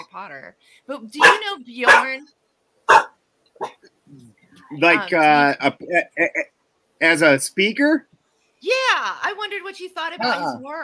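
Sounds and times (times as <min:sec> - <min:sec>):
speech: 0:00.2 - 0:10.8
dog barking: 0:01.2 - 0:02.2, 0:02.9 - 0:03.8.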